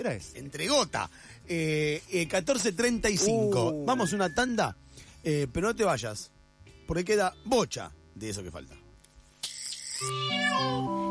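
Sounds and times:
speech: 0:00.0 - 0:08.8, 0:10.0 - 0:11.0
kitten meowing: 0:03.8 - 0:04.6, 0:10.0 - 0:10.9.

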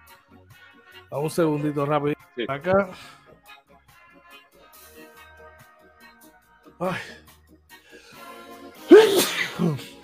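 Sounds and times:
speech: 0:01.1 - 0:03.2, 0:06.8 - 0:07.2, 0:09.6 - 0:09.9
loud sneeze: 0:08.8 - 0:10.0.

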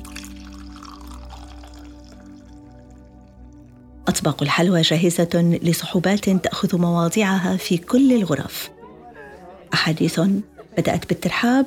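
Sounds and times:
coffee pouring from a pot: 0:00.0 - 0:03.7
speech: 0:04.2 - 0:08.8, 0:09.8 - 0:11.6.

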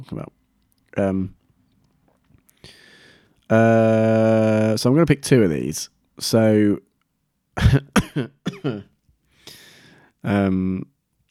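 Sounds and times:
speech: 0:00.0 - 0:01.4, 0:03.5 - 0:06.9, 0:07.6 - 0:08.9, 0:10.2 - 0:10.9
breathy exhale: 0:02.6 - 0:03.4, 0:09.4 - 0:10.1
person coughing: 0:07.6 - 0:08.9.

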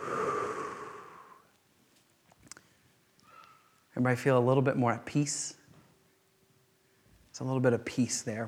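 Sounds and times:
slow audible exhale during a guided group breathing exercise: 0:00.0 - 0:01.5
faint small clicks: 0:01.5 - 0:03.9
speech: 0:04.0 - 0:05.6, 0:07.4 - 0:08.4.

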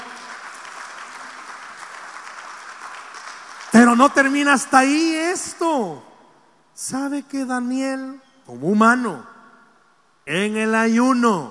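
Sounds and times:
audience applause: 0:00.0 - 0:04.0
speech: 0:03.7 - 0:06.1, 0:06.8 - 0:09.3, 0:10.3 - 0:11.4.

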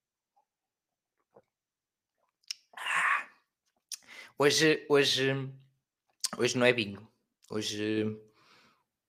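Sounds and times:
person sipping water: 0:01.2 - 0:04.1
speech: 0:04.4 - 0:05.6, 0:06.4 - 0:08.3.

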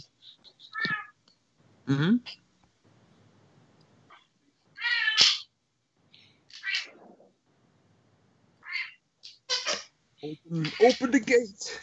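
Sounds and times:
cats meowing: 0:00.6 - 0:01.2, 0:04.8 - 0:05.5, 0:06.5 - 0:07.2, 0:08.6 - 0:09.8
speech: 0:01.9 - 0:02.4, 0:10.5 - 0:11.8.

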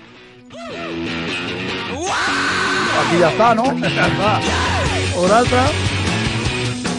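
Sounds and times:
loud music from a played record with dense distorted instruments: 0:00.0 - 0:06.9
raw strained vocal shout of singer: 0:01.8 - 0:05.2
laughter: 0:02.7 - 0:05.1
speech: 0:03.1 - 0:05.8.

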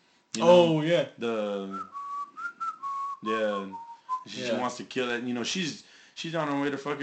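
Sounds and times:
speech: 0:00.4 - 0:01.9, 0:03.2 - 0:07.0
person whistling a short movie melody: 0:01.7 - 0:04.6.

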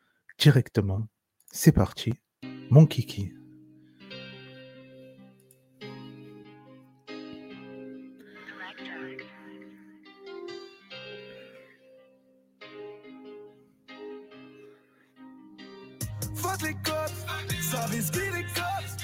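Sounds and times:
speech: 0:00.4 - 0:03.4
rap track with rhythmic vocals over bass and a steady beat: 0:16.0 - 0:19.0.

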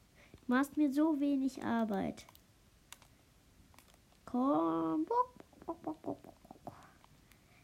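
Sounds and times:
speech: 0:00.5 - 0:02.4, 0:04.3 - 0:06.4
video game chicken clucking: 0:05.5 - 0:06.7.

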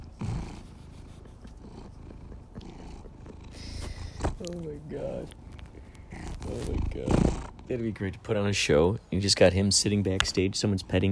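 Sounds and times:
domestic cat purring loudly: 0:00.0 - 0:08.0
speech: 0:04.4 - 0:05.4, 0:06.5 - 0:11.1.

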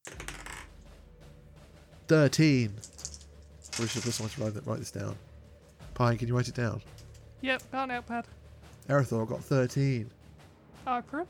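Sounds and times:
dice rolling on a hard tabletop: 0:00.0 - 0:00.8, 0:02.7 - 0:04.6
speech: 0:02.1 - 0:02.9, 0:03.8 - 0:05.3, 0:06.0 - 0:10.2, 0:10.8 - 0:11.2.

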